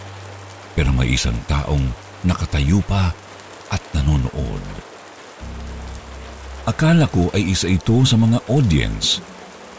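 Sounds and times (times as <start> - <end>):
steady rain pouring down: 0.0 - 9.7
speech: 0.8 - 5.6, 6.6 - 9.4
deeper low rumble: 5.4 - 7.5.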